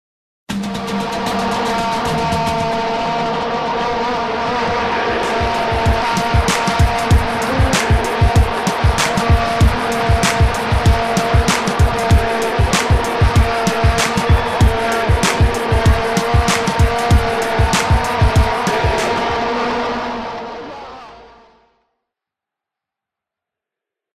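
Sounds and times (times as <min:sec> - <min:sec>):
vuvuzela: 0:00.5 - 0:21.3
hip hop music: 0:00.5 - 0:21.4.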